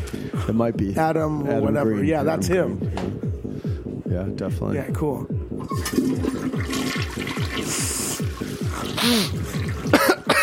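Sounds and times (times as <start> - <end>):
speech: 0.1 - 3.2, 4.1 - 10.1
toilet flushing in a restroom with stalls: 5.6 - 10.1.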